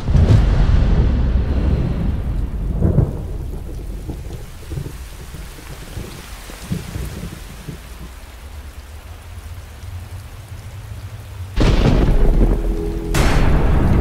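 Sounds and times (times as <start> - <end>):
deep rolling thunder: 0.0 - 7.8, 11.6 - 13.9
steady hissing rainfall: 0.0 - 13.9.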